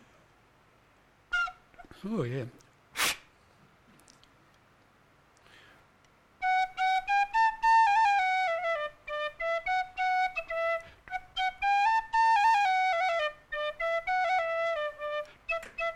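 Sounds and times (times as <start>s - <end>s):
tin whistle playing a bright lilting melody live: 1.3s - 1.7s, 6.4s - 15.9s
speech: 2.0s - 2.6s.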